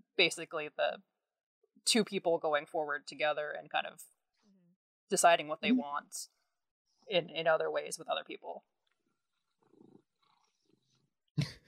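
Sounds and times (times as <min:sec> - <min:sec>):
speech: 0:00.2 - 0:01.1, 0:01.8 - 0:04.2, 0:05.1 - 0:06.4, 0:07.1 - 0:08.7
cat purring softly in short rumbling bursts: 0:09.4 - 0:11.0.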